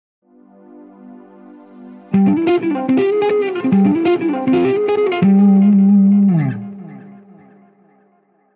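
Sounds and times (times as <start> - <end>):
harmonic major scale in C exercise: 2.1 - 8.0.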